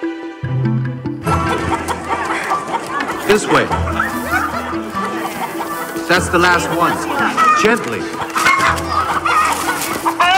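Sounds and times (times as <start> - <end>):
flock of chickens clucking: 1.2 - 10.3
laughter: 1.2 - 10.3
speech: 3.3 - 4.0, 6.1 - 9.4.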